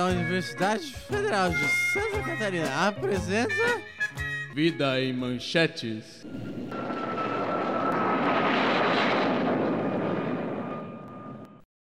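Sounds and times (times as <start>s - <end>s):
rhythmic music: 0.0s - 4.6s
speech: 0.0s - 6.9s
airplane engine roaring with a high whine: 6.2s - 11.6s.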